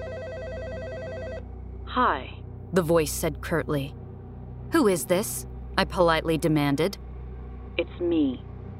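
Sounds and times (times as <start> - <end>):
telephone ringing with electronic bell tone: 0.0 - 1.4
speech: 2.0 - 4.0, 4.7 - 7.0, 7.8 - 8.5.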